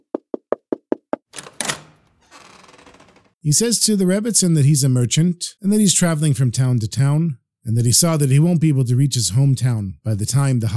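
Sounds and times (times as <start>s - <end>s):
knocking on a door: 0.0s - 1.3s
door scraping and rattling: 1.2s - 3.4s
speech: 3.4s - 10.7s.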